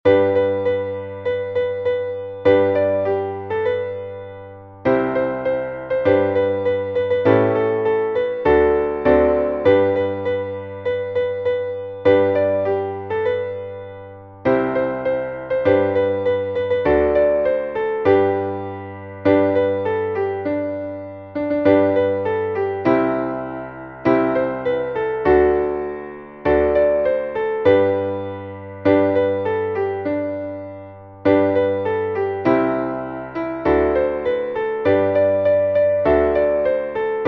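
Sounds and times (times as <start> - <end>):
piano piece: 0.0 - 37.2.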